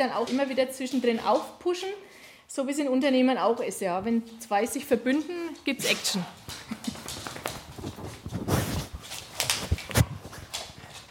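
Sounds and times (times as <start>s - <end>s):
speech: 0.0s - 7.0s
two dogs playing and running around: 0.0s - 11.0s
rustling: 5.8s - 11.0s.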